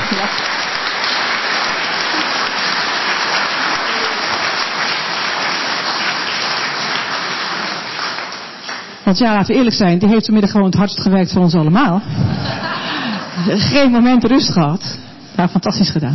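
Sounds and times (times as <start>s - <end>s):
applause from a sizable crowd: 0.0s - 9.0s
speech: 9.1s - 12.6s, 13.4s - 16.1s
laughter: 12.1s - 13.6s.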